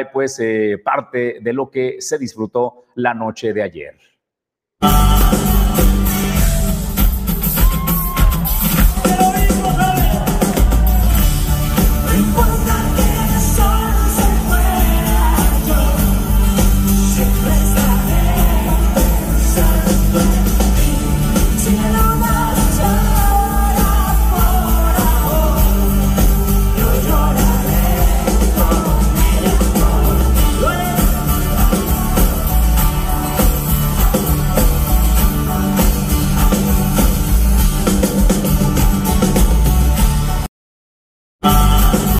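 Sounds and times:
speech: 0.0 - 4.1, 4.8 - 5.9
loud live concert music of a band: 4.8 - 40.5, 41.4 - 42.1
fan singing and shouting along: 7.6 - 11.2, 12.0 - 32.7, 41.4 - 42.1.

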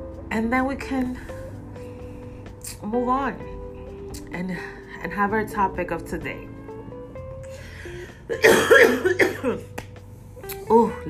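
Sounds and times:
speech: 0.3 - 1.4, 2.7 - 3.5, 4.1 - 6.5, 8.3 - 9.7, 10.7 - 11.0
forceful throaty cough: 8.3 - 9.7.

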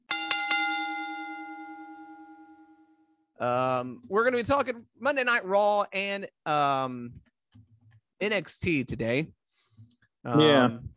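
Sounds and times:
metal wrestling ring bell being struck: 0.0 - 3.2
speech: 3.4 - 7.3, 8.2 - 9.4, 10.2 - 10.9.

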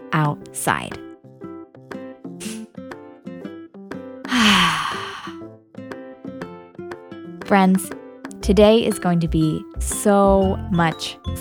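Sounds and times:
light music of plucked-sounding notes: 0.0 - 11.3
speech: 0.1 - 1.0, 7.5 - 11.3
deep breath drawn in: 4.3 - 5.5.

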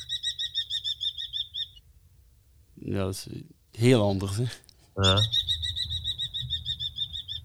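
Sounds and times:
common kestrel calling: 0.0 - 1.9, 5.0 - 7.4
speech: 2.9 - 5.5.

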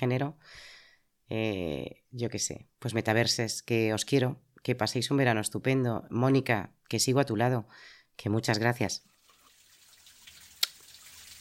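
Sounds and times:
speech: 0.0 - 9.1
hiss of running or trickling water: 9.0 - 11.4.

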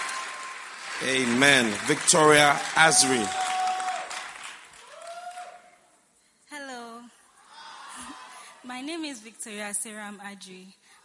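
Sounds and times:
audience applause: 0.0 - 5.7
speech: 1.0 - 3.5, 9.0 - 11.0.

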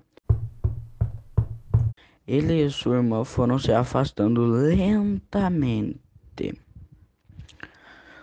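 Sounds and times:
boy knocking on a wooden door: 0.3 - 2.0
speech: 2.3 - 6.6.

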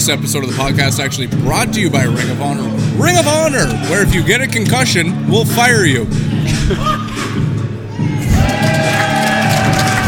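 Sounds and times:
speech: 0.0 - 7.4
large crowd cheering at a live wrestling event: 8.0 - 10.0.

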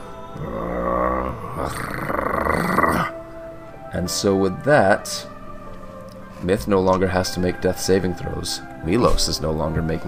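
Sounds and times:
speech: 0.4 - 0.8, 4.0 - 5.3, 6.4 - 10.0
six-legged beast growling: 0.4 - 3.2.

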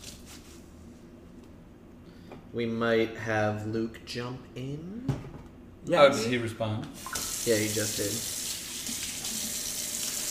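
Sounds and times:
speech: 2.5 - 8.4
faucet running into a sink: 7.0 - 10.2.

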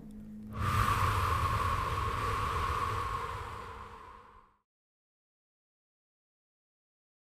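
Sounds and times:
forceful exhalation during a guided breathing exercise: 0.6 - 4.6.

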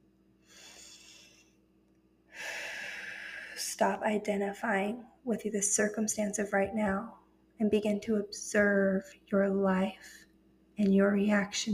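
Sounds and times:
deep breath drawn slowly: 0.4 - 1.6, 2.3 - 3.6
speech: 3.8 - 10.2, 10.8 - 11.7.

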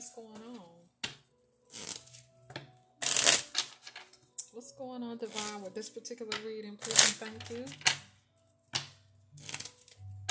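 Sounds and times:
tarot cards being shuffled: 1.0 - 2.2, 3.0 - 4.2, 5.3 - 5.6, 6.3 - 8.0, 8.8 - 10.2
speech: 4.8 - 8.0.

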